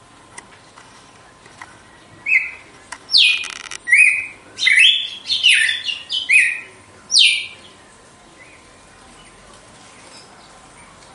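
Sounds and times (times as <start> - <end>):
female red-cowled cardinal singing: 2.2 - 7.6
click-like noise: 2.9 - 3.8.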